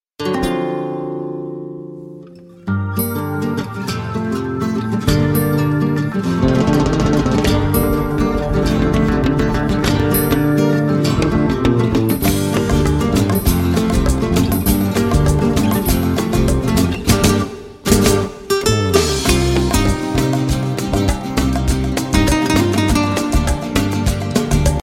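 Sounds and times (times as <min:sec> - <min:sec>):
guitar: 0:00.2 - 0:24.8.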